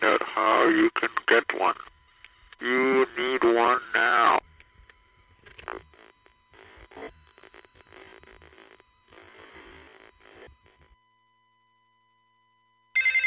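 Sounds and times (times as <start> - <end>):
crackly hissing telephone line noise: 0.0 - 11.0
speech: 0.7 - 1.9, 2.6 - 4.4
loud electronic telephone ring: 13.0 - 13.2.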